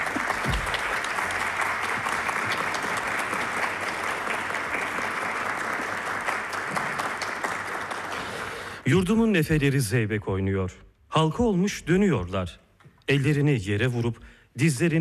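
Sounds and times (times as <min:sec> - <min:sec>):
audience applauding a choir conductor at a concert: 0:00.0 - 0:08.8
speech: 0:08.9 - 0:15.0.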